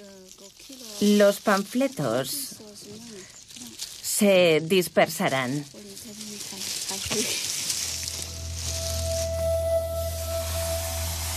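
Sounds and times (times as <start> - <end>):
speech: 1.0 - 2.5, 4.2 - 5.8
gas hissing into balloons being inflated to carry leaflets: 7.0 - 11.3.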